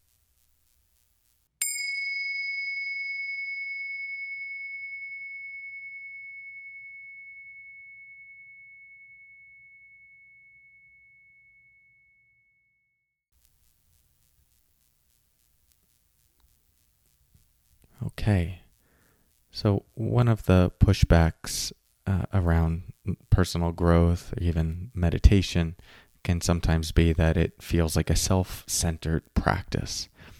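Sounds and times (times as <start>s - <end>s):
meditation bell struck and ringing: 1.6s - 12.6s
speech: 18.2s - 18.6s, 19.5s - 30.1s.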